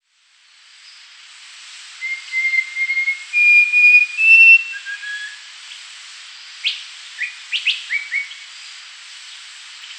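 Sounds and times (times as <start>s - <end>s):
Rufous-crowned babbler song of clear whistles: 2.0s - 5.5s, 6.6s - 8.4s.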